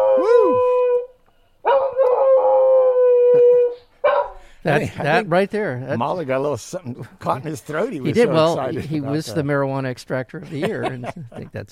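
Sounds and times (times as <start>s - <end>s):
dog howling with wavering pitch: 0.0s - 4.3s
dog yelping: 1.7s - 2.8s, 3.7s - 4.4s
speech: 4.6s - 11.7s
laughter: 4.7s - 5.4s, 6.9s - 9.6s, 10.4s - 11.7s.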